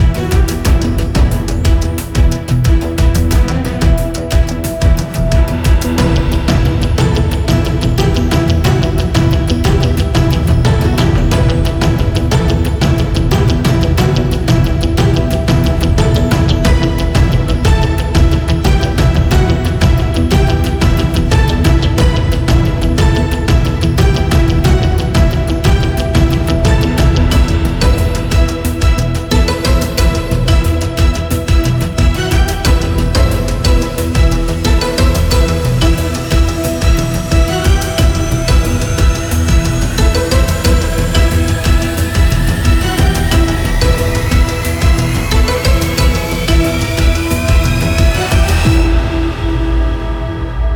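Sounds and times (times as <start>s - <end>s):
tense violin composition: 0.0s - 50.7s.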